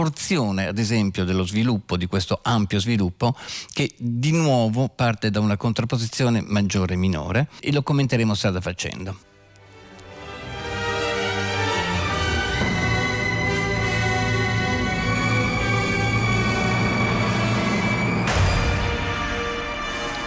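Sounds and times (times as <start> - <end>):
speech: 0.0 - 9.3
full orchestra playing loud sustained chords: 9.6 - 20.2
massive orchestral hammer blow: 12.1 - 20.2.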